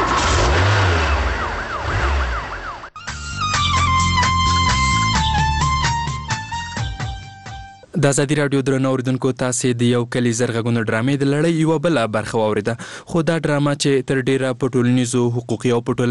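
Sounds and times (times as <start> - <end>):
car engine revving as the vehicle pulls away fast: 0.0 - 2.9
police siren wailing: 0.0 - 5.5
music: 3.0 - 7.9
speech: 8.0 - 16.1.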